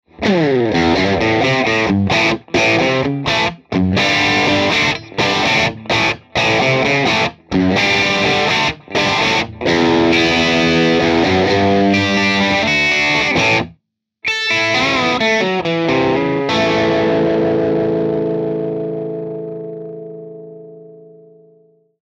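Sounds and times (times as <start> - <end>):
classic rock guitar riff: 0.1 - 21.7.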